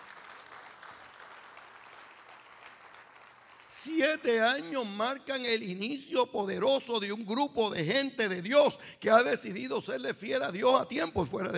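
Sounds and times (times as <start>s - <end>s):
large church audience clapping: 0.0s - 4.8s
speech: 3.8s - 11.5s.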